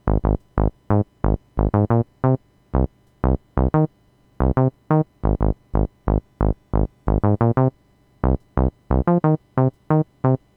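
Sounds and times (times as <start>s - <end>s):
dry bass: 0.0s - 2.1s, 2.8s - 3.8s, 4.4s - 9.2s.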